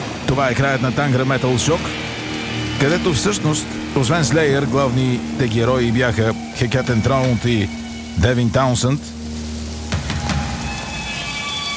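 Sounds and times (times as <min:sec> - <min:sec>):
sharper drops or splashes: 0:00.0 - 0:11.7
steady rain hissing: 0:00.0 - 0:11.7
speech: 0:00.3 - 0:02.1, 0:02.8 - 0:09.2.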